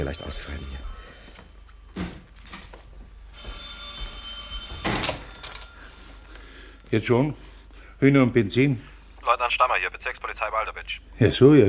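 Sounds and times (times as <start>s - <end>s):
speech: 0.0s - 0.9s, 6.9s - 11.6s
telephone bell ringing: 0.0s - 1.6s, 3.3s - 6.7s.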